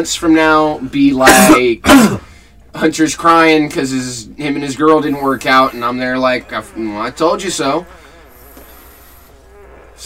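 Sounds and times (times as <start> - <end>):
speech: 0.0 - 8.0
drawn-out buzzy fart: 5.1 - 10.0.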